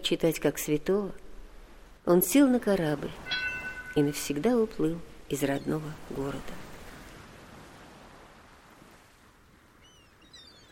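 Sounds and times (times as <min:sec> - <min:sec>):
wind: 0:00.0 - 0:10.7
speech: 0:00.1 - 0:01.2, 0:02.0 - 0:03.3, 0:04.0 - 0:06.7
sea surf: 0:02.9 - 0:04.5, 0:05.1 - 0:10.0.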